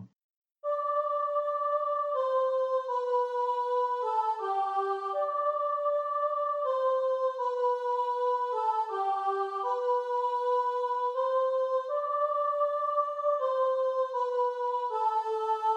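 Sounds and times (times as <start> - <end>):
soprano singing alone in choir: 0.6 - 15.7.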